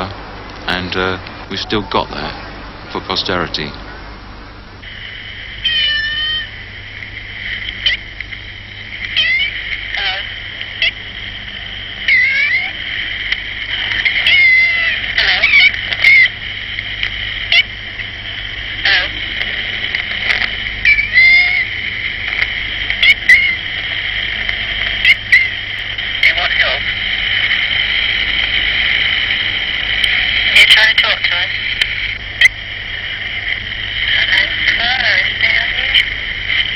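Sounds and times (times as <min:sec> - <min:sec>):
steady low hum: 0:00.0 - 0:36.7
speech: 0:00.8 - 0:03.8
cat meowing in drawn-out wavering cries: 0:05.6 - 0:06.5, 0:09.2 - 0:10.2, 0:12.1 - 0:12.7, 0:14.2 - 0:16.3, 0:20.9 - 0:21.7, 0:23.0 - 0:23.6.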